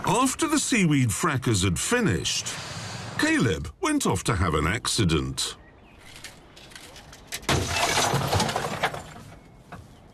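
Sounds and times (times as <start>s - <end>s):
speech: 0.1s - 5.6s
glass breaking: 7.4s - 9.2s.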